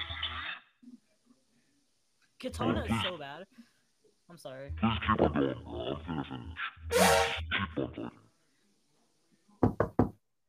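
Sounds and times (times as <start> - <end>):
speech: 2.4 - 8.2
quick solid knocking on a door: 9.6 - 10.2.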